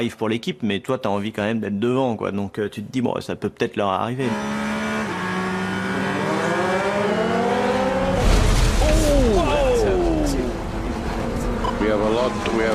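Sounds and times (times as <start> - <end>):
speech: 0.0 - 4.8
damaged Porsche race car engine roaring on the Mulsanne straight: 4.2 - 12.7.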